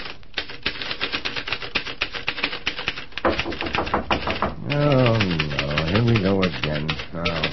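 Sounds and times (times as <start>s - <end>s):
typewriter keys clattering: 0.0s - 7.5s
heavier knocks on a door: 3.2s - 5.4s
man speaking: 4.4s - 7.5s.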